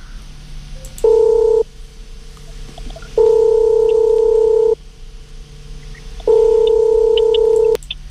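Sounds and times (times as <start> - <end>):
faint telephone line hum: 0.0 - 8.0
telephone ringing tone on an open line: 1.0 - 1.7, 3.2 - 4.8, 6.3 - 7.8.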